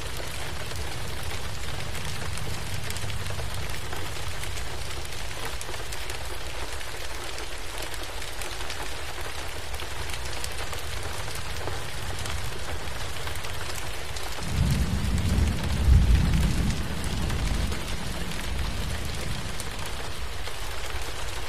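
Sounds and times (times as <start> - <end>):
deep rumble of thunder: 0.0 - 5.3, 14.3 - 20.9
rain falling steadily against a window: 0.0 - 21.4.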